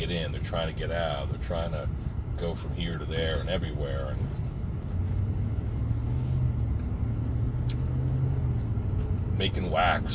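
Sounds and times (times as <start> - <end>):
speech: 0.0 - 4.4, 9.4 - 10.1
cars driving past on a highway: 4.1 - 10.1.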